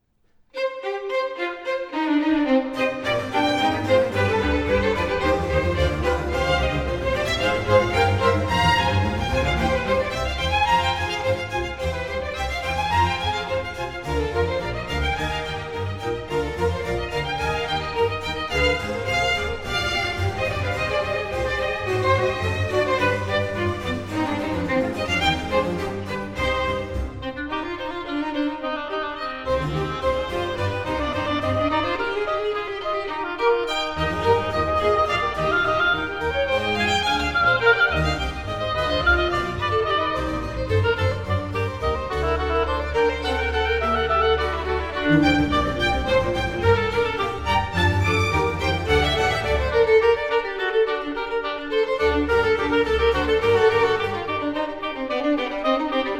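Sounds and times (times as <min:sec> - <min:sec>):
concerto for oboe and violin: 0:00.5 - 0:56.1.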